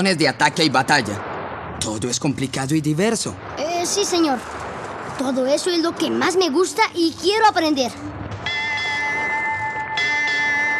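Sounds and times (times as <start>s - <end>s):
speech: 0.0s - 4.6s, 5.2s - 8.2s
ship's bell striking the hour: 8.4s - 10.7s.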